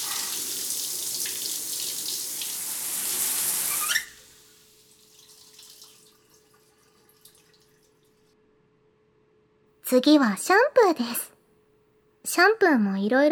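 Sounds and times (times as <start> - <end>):
shower running gently at low pressure on a cat being bathed: 0.0 - 5.7
speech: 9.9 - 11.3, 12.4 - 13.3.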